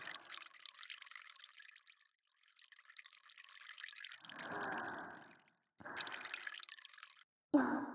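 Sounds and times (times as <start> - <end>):
urine trickling and splashing into a bottle: 0.0 - 7.3.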